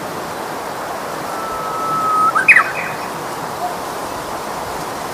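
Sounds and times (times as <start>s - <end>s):
soft background hiss: 0.2s - 5.1s
Japanese bush warbler uguisu whistled song: 1.0s - 3.8s.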